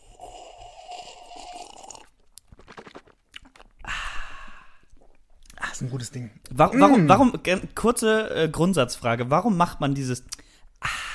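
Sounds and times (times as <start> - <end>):
sharp clicky mouth and throat sounds: 0.0 - 3.9, 4.8 - 5.6, 10.3 - 10.5
person gulping rum with gurgling swallows: 0.0 - 5.8, 6.5 - 7.4
speech: 5.8 - 10.4.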